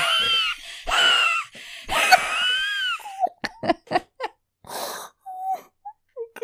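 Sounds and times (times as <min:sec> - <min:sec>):
wheezy gasp: 0:00.0 - 0:03.3, 0:04.6 - 0:05.8
laughter: 0:01.9 - 0:04.4.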